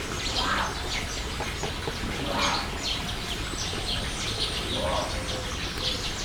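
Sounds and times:
distant jungle cat at a zoo: 0:00.1 - 0:06.1.

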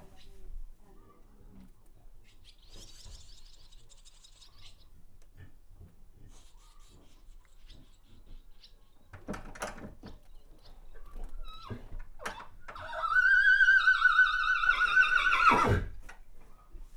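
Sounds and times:
horse neighing in a farmyard: 0:11.4 - 0:16.0.

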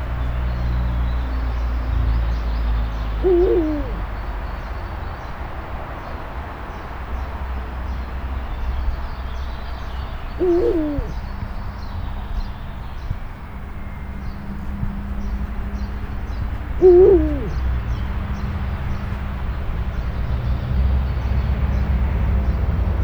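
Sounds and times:
low rumble of road traffic: 0:00.0 - 0:23.0
captive Eurasian eagle-owl hoot in a zoo: 0:03.2 - 0:04.1, 0:10.4 - 0:11.2, 0:16.5 - 0:17.7.

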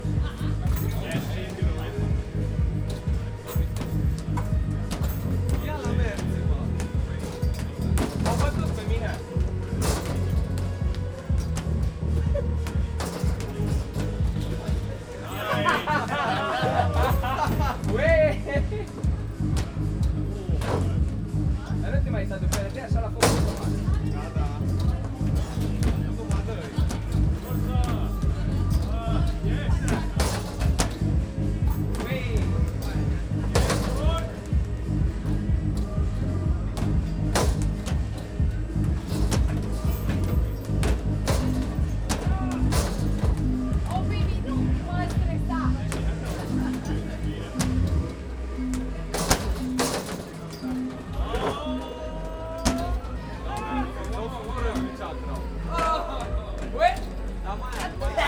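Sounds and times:
people laughing at an amusement park: 0:00.0 - 0:03.4, 0:11.5 - 0:34.4, 0:43.4 - 0:49.8, 0:50.7 - 0:58.2
basketball at an amusement park: 0:00.0 - 0:55.0.

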